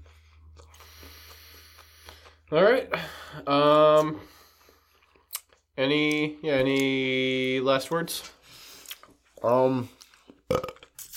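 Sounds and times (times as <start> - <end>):
speech: 2.5 - 4.3, 5.8 - 8.4, 9.4 - 10.7
loud low gravelly burp: 10.5 - 10.8.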